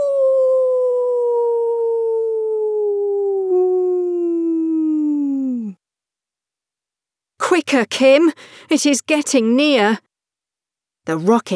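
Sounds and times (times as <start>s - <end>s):
long howl sliding downward in pitch: 0.0s - 5.8s
speech: 7.7s - 10.1s, 11.1s - 11.5s.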